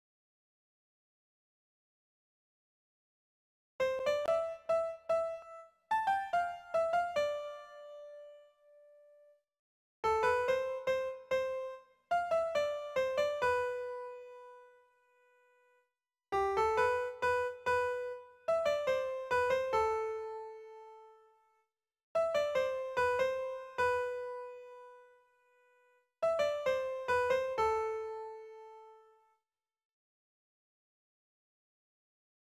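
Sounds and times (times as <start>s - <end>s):
MIDI piano: 3.8s - 9.4s, 10.0s - 15.7s, 16.4s - 21.5s, 22.2s - 29.3s.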